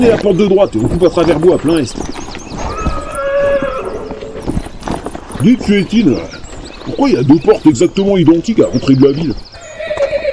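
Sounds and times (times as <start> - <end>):
speech: 0.0 - 2.4, 5.4 - 9.5
dull hoof thuds: 0.0 - 10.1
horse neighing with a high wavering whinny: 2.6 - 4.5, 9.6 - 10.3.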